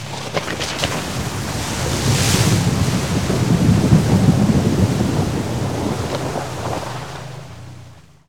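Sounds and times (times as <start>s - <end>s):
automobile tires splashing water: 0.0s - 8.2s.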